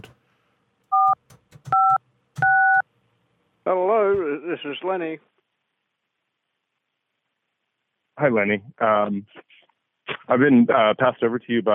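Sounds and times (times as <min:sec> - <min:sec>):
telephone keypad dialing tones while a call is transferred: 0:00.9 - 0:02.8
speech: 0:04.6 - 0:05.4, 0:08.2 - 0:09.6, 0:10.3 - 0:11.7.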